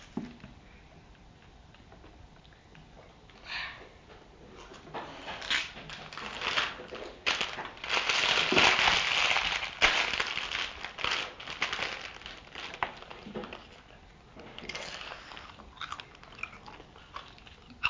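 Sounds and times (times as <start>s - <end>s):
person munching crisps: 5.3s - 17.8s.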